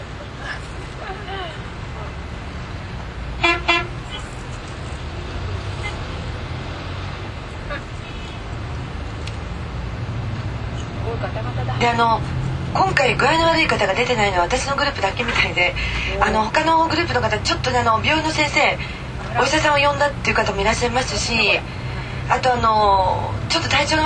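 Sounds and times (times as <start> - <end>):
steady street traffic noise: 0.0 - 24.0
car horn honk: 3.4 - 4.0
speech: 11.8 - 24.0.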